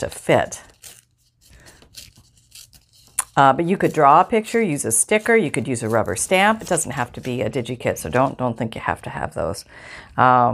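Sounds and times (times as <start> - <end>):
speech: 0.0 - 0.7, 3.4 - 10.5
paper tearing as a picture is ripped out of a printed sheet: 0.0 - 8.4.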